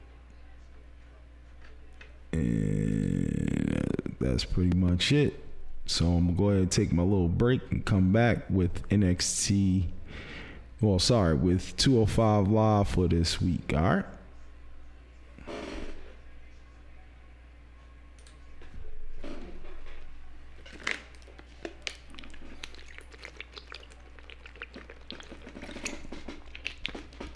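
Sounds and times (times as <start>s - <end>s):
low hum: 0.0s - 27.3s
speech: 4.3s - 14.1s
small wet clicks and swallowing noises: 20.8s - 27.3s
person gulping water: 21.8s - 27.3s.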